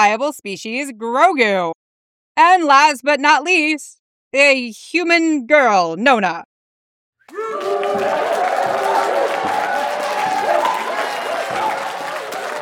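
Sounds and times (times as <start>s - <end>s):
speech: 0.0s - 1.8s, 2.4s - 6.5s
crowd applause: 7.3s - 12.5s.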